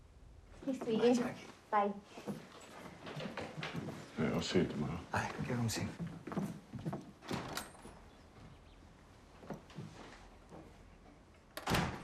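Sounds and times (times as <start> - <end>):
speech: 0.6 - 6.5
front door in a hall closing: 7.2 - 8.1, 11.5 - 12.0.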